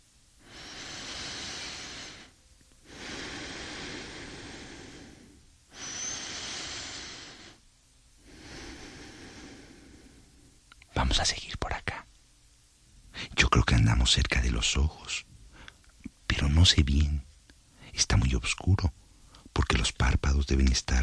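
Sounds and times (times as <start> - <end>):
sleeping person breathing deeply and slowly: 0.4 - 7.6, 8.2 - 10.5
speech: 11.0 - 12.0, 13.7 - 15.3, 16.4 - 17.3, 18.0 - 19.0, 19.7 - 21.0.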